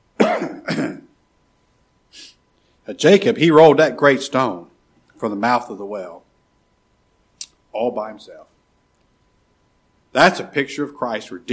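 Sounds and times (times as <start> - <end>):
preacher coughing and clearing his throat during a sermon: 0.2 - 1.2
speech: 2.9 - 6.2, 7.7 - 8.5, 10.1 - 11.5.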